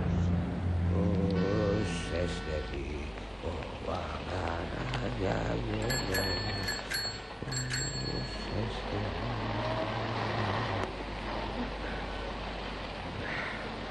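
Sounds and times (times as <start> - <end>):
minibus approaching along a road: 0.0 - 13.8
bell-like ring: 5.8 - 9.0.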